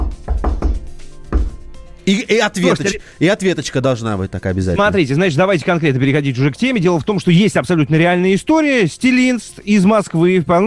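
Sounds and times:
patterned knocking on a door: 0.0s - 1.6s
speech: 2.1s - 10.6s.

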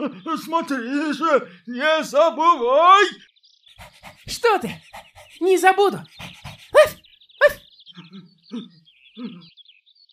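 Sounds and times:
speech: 0.0s - 6.8s, 8.5s - 9.5s
faint high bird chirps: 0.0s - 10.1s
dog barking and yelping: 3.9s - 7.6s.

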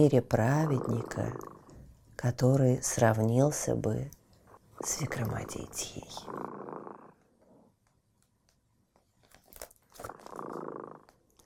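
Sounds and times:
speech: 0.0s - 1.6s, 2.2s - 4.2s, 4.8s - 7.0s
cat purring: 0.0s - 3.9s, 4.5s - 7.7s, 10.0s - 11.4s
small clicks and rustles: 7.2s - 11.4s.

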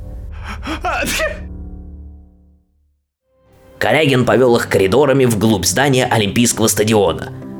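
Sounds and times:
person sneezing from incense smells: 0.5s - 1.4s
speech: 0.7s - 1.5s, 3.8s - 7.5s.

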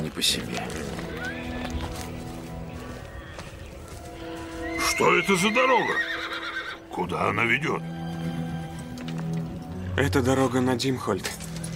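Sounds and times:
horses shuffling and stamping: 0.0s - 11.7s
speech: 0.2s - 1.0s, 5.0s - 6.2s, 7.0s - 7.9s, 10.0s - 11.4s
restless horses whinnying and neighing: 0.7s - 7.8s.

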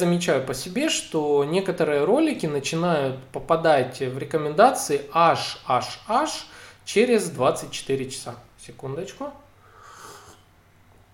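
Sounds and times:
speech: 0.0s - 9.4s
slurping a hot chicory drink: 9.9s - 10.5s.

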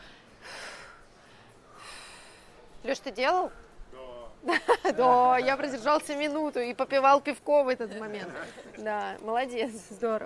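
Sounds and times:
freediver's strong recovery breaths after a breath-hold: 0.0s - 2.8s
speech: 2.8s - 10.2s
laughter: 4.4s - 6.4s, 7.9s - 9.2s.

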